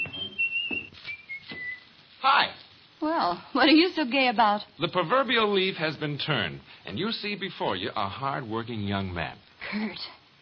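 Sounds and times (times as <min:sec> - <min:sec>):
man whistling a tune: 0:00.0 - 0:01.9
speech: 0:02.2 - 0:10.2.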